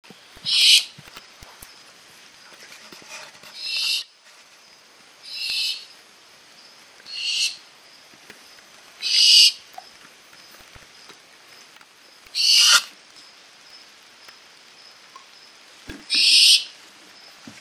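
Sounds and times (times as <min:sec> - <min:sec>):
American barn owl Tyto furcata tuidara: 0:00.4 - 0:01.0, 0:02.8 - 0:04.2, 0:05.2 - 0:06.0, 0:07.1 - 0:07.7, 0:09.0 - 0:10.0, 0:12.3 - 0:13.0, 0:15.2 - 0:16.8.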